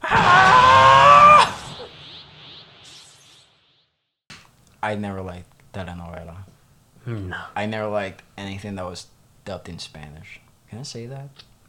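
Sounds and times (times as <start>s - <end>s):
person imitating a character's high strained scream: 0.0s - 1.8s
speech: 4.9s - 11.5s.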